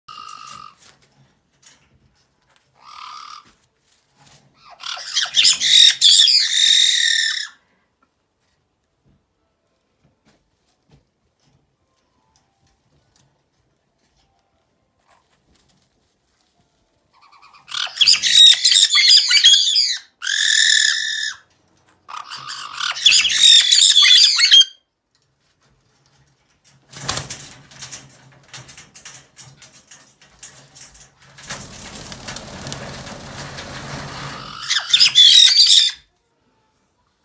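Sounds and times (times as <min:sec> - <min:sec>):
Pionites parrots calling: 0:04.6 - 0:07.6, 0:17.2 - 0:21.4, 0:22.1 - 0:24.8, 0:34.4 - 0:36.0.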